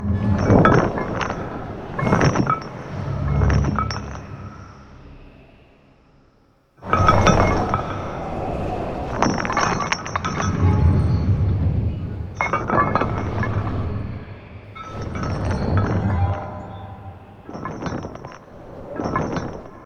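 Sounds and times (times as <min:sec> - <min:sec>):
chains rattling: 0:00.0 - 0:04.8, 0:06.8 - 0:19.8
low wind: 0:00.0 - 0:19.8.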